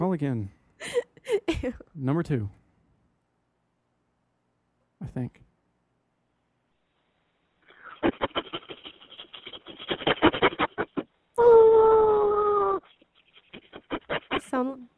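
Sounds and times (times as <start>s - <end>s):
speech: 0.0s - 2.6s, 5.0s - 5.4s, 14.5s - 14.9s
dog yapping rapidly: 7.7s - 11.2s, 12.8s - 14.8s
dog howling: 9.8s - 13.0s.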